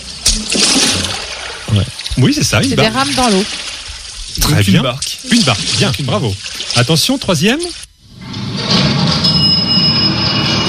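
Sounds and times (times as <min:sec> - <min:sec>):
speech: 0:01.7 - 0:03.7, 0:04.4 - 0:07.9
elevator running: 0:08.1 - 0:10.6.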